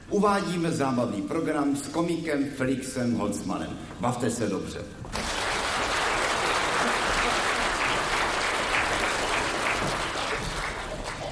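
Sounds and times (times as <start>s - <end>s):
speech: 0.1s - 5.1s
audience applause at a comedy entertainment program: 5.1s - 11.3s.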